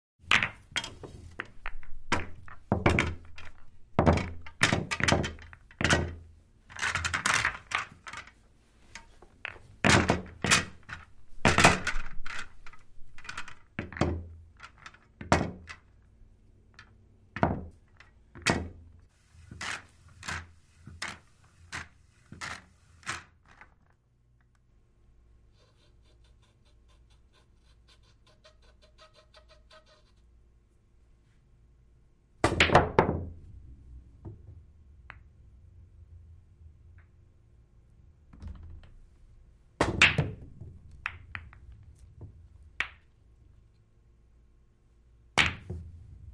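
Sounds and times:
billiard balls clacking in a pool game: 0.2 - 18.8, 19.4 - 24.0, 32.4 - 35.8, 38.2 - 43.3, 45.3 - 46.3.

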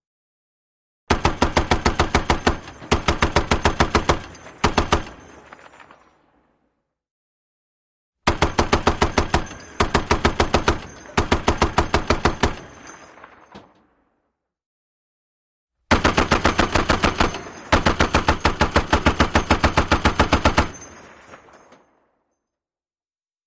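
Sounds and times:
.50 caliber machine gun long bursts: 1.1 - 5.4, 8.3 - 12.6, 15.9 - 20.9
shell casings dropping: 4.2 - 6.2, 12.6 - 13.8, 20.5 - 22.0.

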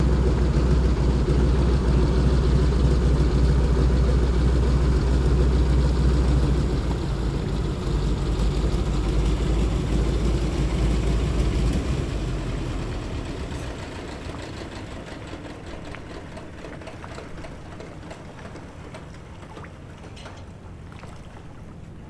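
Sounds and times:
DHC single engine idling: 0.0 - 20.8.

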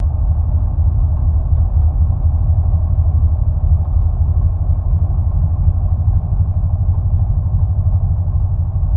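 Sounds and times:
boat engine idling heard underwater: 0.0 - 8.9.

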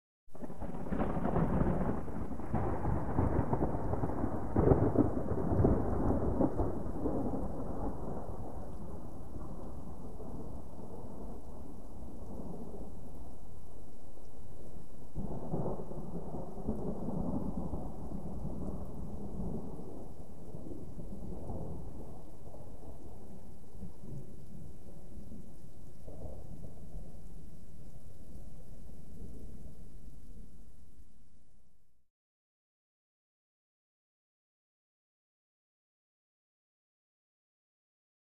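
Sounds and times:
distant thunder crackling: 0.3 - 13.6, 14.6 - 30.0.

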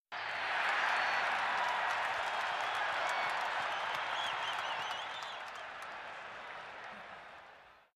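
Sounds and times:
football crowd cheering in a sports arena: 0.1 - 7.9.

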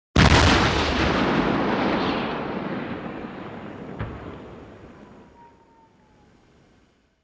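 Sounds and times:
modern artillery tank gun firing outdoors: 0.2 - 4.9.

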